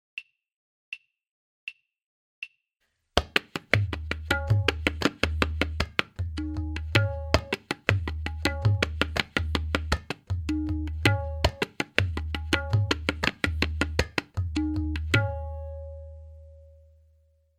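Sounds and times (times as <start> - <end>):
tabla playing a tihai: 3.2 - 16.6.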